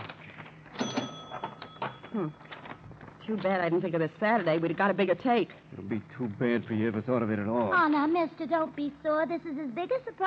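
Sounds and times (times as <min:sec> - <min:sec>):
cash register mechanical clacks and drawer rattles: 0:00.0 - 0:02.8
cash register bell ringing during a holdup: 0:00.8 - 0:02.6
speech: 0:02.1 - 0:02.4, 0:03.3 - 0:10.2.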